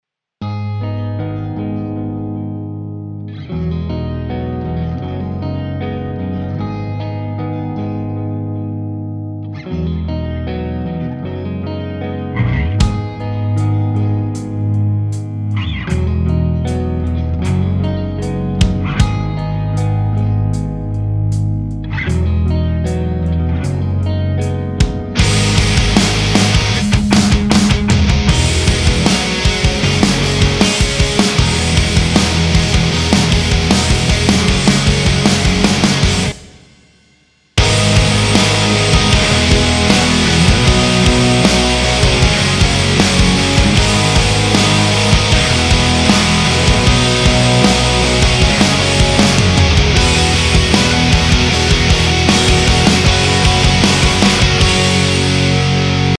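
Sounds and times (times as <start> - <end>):
hard rock clean guitar: 0.4 - 56.1.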